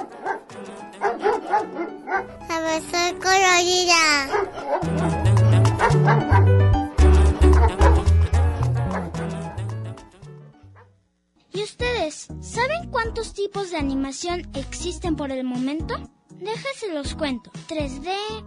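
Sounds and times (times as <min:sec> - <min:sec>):
dog barking: 0:00.0 - 0:02.4, 0:04.3 - 0:05.1, 0:05.8 - 0:06.5, 0:07.5 - 0:08.1
lively music with a bouncy bass line: 0:02.5 - 0:10.2
speech: 0:13.2 - 0:18.4.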